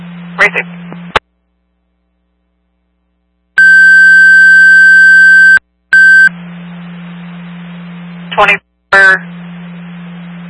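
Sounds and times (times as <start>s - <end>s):
radio hissing static with low hum: 0.0s - 1.3s, 3.6s - 10.4s
speech: 0.4s - 0.8s, 8.4s - 9.4s
dispatch radio alert tones: 3.6s - 6.3s.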